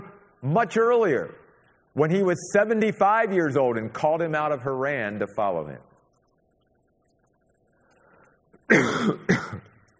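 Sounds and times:
speech: 0:00.4 - 0:01.4, 0:02.0 - 0:05.9, 0:08.7 - 0:09.6
preacher's throat-clearing coughs during a sermon in the night air: 0:08.7 - 0:09.8.

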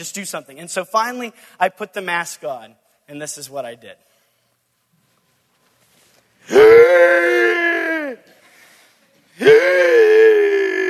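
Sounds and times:
speech: 0:00.0 - 0:04.1, 0:06.4 - 0:07.0
breathy pause between screams: 0:01.3 - 0:01.6, 0:08.3 - 0:09.3
masked person screaming harshly while running around a classroom: 0:06.5 - 0:08.2, 0:09.4 - 0:10.8.

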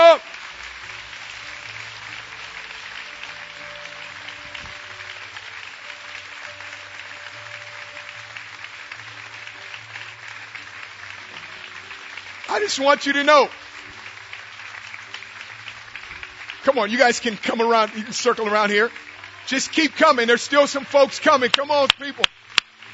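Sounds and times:
applause from a sizable standing audience: 0:00.0 - 0:22.9
speech: 0:12.6 - 0:13.6, 0:16.8 - 0:22.3.

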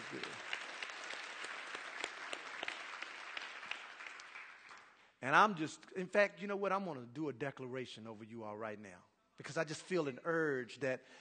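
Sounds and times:
audience applauding with hand claps: 0:00.0 - 0:05.0
speech: 0:05.2 - 0:11.1.

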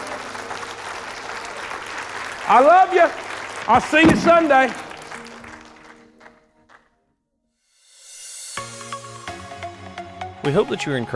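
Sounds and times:
audience clapping in praise: 0:00.0 - 0:06.9
speech: 0:02.5 - 0:04.8, 0:10.5 - 0:11.1.

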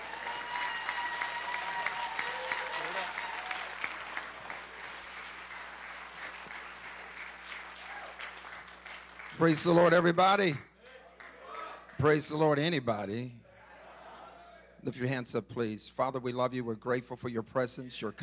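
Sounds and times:
faint voices and cheers: 0:00.0 - 0:03.8, 0:07.8 - 0:08.3
audience applauding for a bishop: 0:00.0 - 0:10.1
speech: 0:09.4 - 0:10.7, 0:12.0 - 0:13.4, 0:14.8 - 0:18.2.

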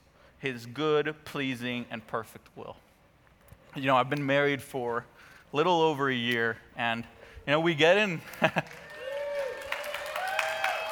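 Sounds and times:
speech: 0:00.4 - 0:02.9, 0:03.8 - 0:08.8
audience clapping: 0:08.2 - 0:10.9
crowd whooping and whistling: 0:08.7 - 0:10.9.

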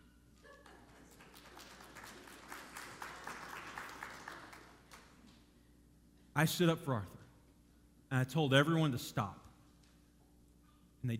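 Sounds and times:
audience applause: 0:00.8 - 0:05.0
speech: 0:06.4 - 0:07.2, 0:08.1 - 0:09.4.

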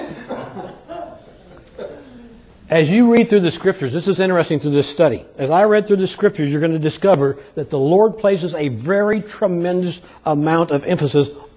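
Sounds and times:
audience coughing in a large room: 0:00.0 - 0:02.4
audience chuckling: 0:00.2 - 0:02.4
speech: 0:02.7 - 0:11.5.

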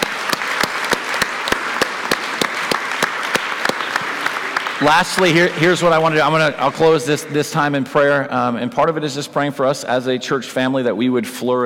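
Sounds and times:
audience clapping: 0:00.0 - 0:07.7
speech: 0:04.8 - 0:11.6.

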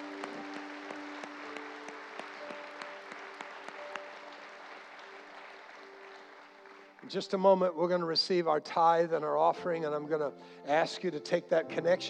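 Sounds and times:
audience clapping: 0:00.0 - 0:08.6
speech: 0:07.1 - 0:12.0.

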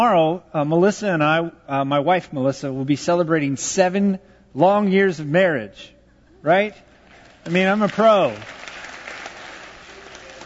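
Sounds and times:
speech: 0:00.0 - 0:08.6
audience applauding: 0:07.0 - 0:10.4.

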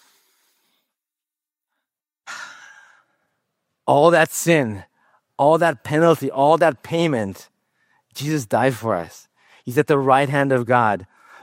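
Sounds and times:
deep breath: 0:00.0 - 0:01.0, 0:01.7 - 0:03.4, 0:07.6 - 0:08.1, 0:09.3 - 0:09.7, 0:11.1 - 0:11.4
speech: 0:03.9 - 0:07.5, 0:08.2 - 0:11.4.

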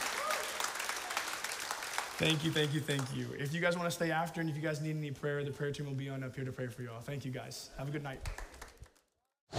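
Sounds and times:
church congregation clapping after a closing prayer: 0:00.0 - 0:03.3, 0:08.2 - 0:09.0
speech: 0:02.2 - 0:08.5.

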